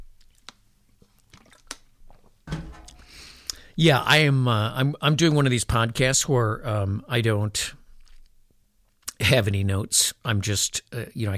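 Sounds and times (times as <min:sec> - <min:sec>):
lip smacks: 0:00.0 - 0:02.3, 0:02.9 - 0:03.6
person sipping a drink: 0:00.2 - 0:03.7
gulp: 0:01.3 - 0:01.8
speech: 0:03.8 - 0:07.8, 0:09.3 - 0:11.3.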